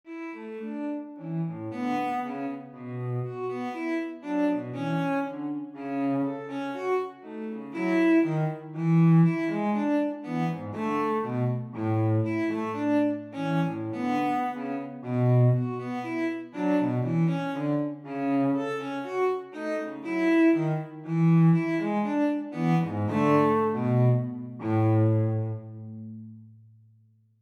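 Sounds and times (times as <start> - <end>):
two cellos playing a short piece in A major: 0.1 - 26.3.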